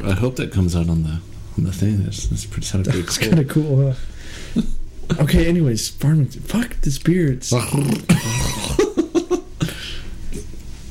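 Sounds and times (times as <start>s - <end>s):
speech: 0.0s - 8.4s
laughter: 2.8s - 3.7s, 8.1s - 9.6s
person clearing throat: 7.7s - 9.8s.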